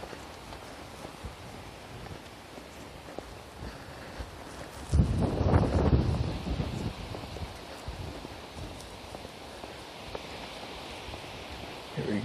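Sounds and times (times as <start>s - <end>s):
north wind blowing across the microphone: 0.0s - 12.2s.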